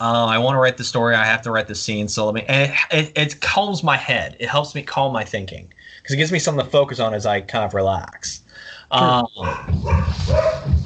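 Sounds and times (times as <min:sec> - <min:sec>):
speech: 0:00.0 - 0:10.8
indistinct voices: 0:02.4 - 0:10.8
dogs barking and yipping: 0:09.3 - 0:10.8.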